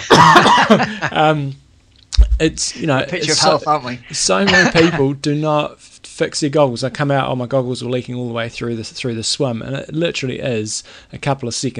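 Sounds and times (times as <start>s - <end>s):
person coughing: 0.0s - 1.1s, 4.5s - 5.0s
laughter: 0.0s - 1.4s, 2.6s - 5.1s
speech: 0.0s - 1.6s, 2.4s - 11.7s.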